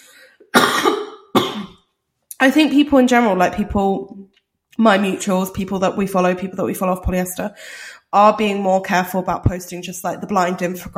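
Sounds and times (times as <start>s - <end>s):
harsh coughs: 0.5s - 1.8s
speech: 2.4s - 10.9s.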